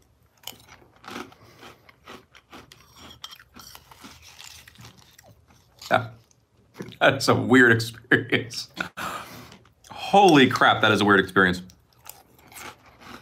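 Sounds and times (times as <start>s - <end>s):
chewing crunchy cinnamon cereal: 0.2s - 7.0s, 11.6s - 13.2s
speech: 5.9s - 6.2s, 7.0s - 8.8s, 10.1s - 11.7s.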